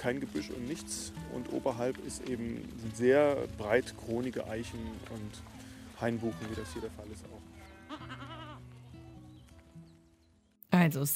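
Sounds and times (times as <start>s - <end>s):
speech: 0.0s - 8.2s, 10.8s - 11.1s
goats in a herd bleating on a heath: 4.1s - 8.9s.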